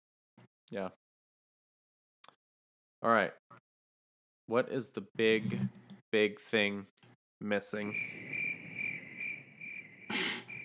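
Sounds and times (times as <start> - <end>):
speech: 0.7 - 1.0, 3.0 - 3.4, 4.5 - 8.3
crickets chirping in high trills: 7.8 - 10.6.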